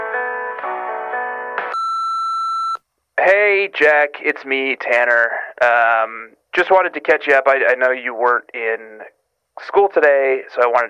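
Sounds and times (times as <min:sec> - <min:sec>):
stacked electronic tones: 0:01.7 - 0:02.8
steady voicemail answering machine beep: 0:01.7 - 0:02.8
speech: 0:03.2 - 0:10.8.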